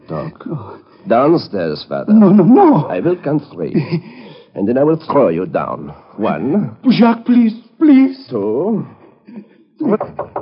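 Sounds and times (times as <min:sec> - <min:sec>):
murmuring background: 0:00.0 - 0:03.4, 0:05.1 - 0:06.9
speech: 0:00.1 - 0:10.3
knocking on a door: 0:09.9 - 0:10.4.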